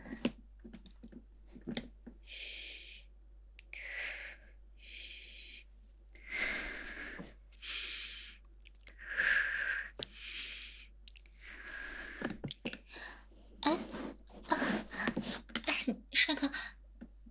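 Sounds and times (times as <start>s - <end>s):
slow rhythmic breathing in through the nose and out through the mouth: 1.4s - 15.8s.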